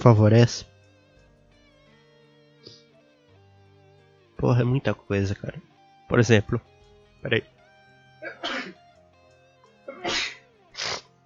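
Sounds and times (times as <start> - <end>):
speech: 0.0 - 0.7, 4.4 - 7.6, 10.0 - 10.3
person sneezing: 8.2 - 8.7, 9.9 - 11.1.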